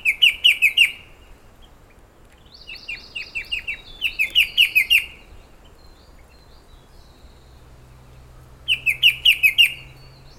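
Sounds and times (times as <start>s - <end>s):
Blyth's shrike-babbler singing, Pteruthius aeralatus: 0.0s - 10.3s.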